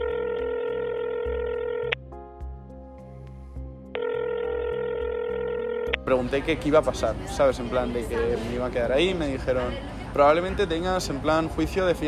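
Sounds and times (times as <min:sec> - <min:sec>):
telephone dial tone in a jail waiting room: 0:00.0 - 0:02.0, 0:04.0 - 0:06.0
low rhythmic pulse: 0:00.0 - 0:12.0
speech: 0:06.1 - 0:12.0.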